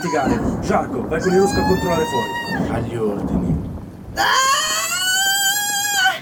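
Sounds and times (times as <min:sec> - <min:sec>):
woman screaming in labour: 0:00.0 - 0:00.5, 0:01.2 - 0:02.7, 0:04.2 - 0:06.1
speech: 0:00.0 - 0:04.6.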